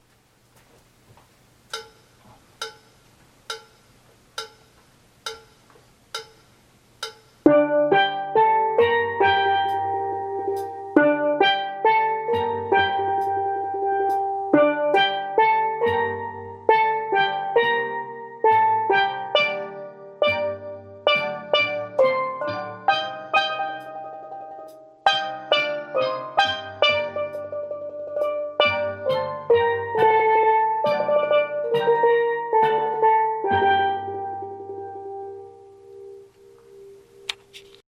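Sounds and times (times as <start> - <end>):
tenor steel pan intro: 1.8 - 37.8
steel band playing: 7.0 - 37.8.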